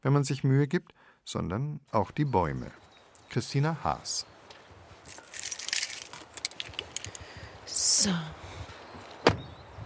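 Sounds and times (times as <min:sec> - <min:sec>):
speech: 0:00.0 - 0:04.3, 0:08.0 - 0:08.4
car keys jangling: 0:05.1 - 0:07.2.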